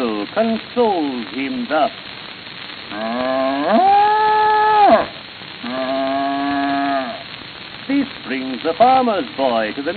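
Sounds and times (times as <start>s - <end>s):
speech: 0.3s - 2.2s, 2.9s - 4.0s, 7.9s - 9.9s
farm cow mooing: 3.0s - 7.2s.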